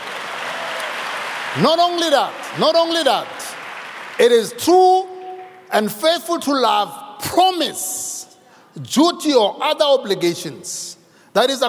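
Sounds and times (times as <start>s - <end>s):
audience applause: 0.0s - 4.5s
speech: 1.5s - 3.4s, 4.2s - 5.1s, 5.7s - 8.1s, 8.8s - 11.6s.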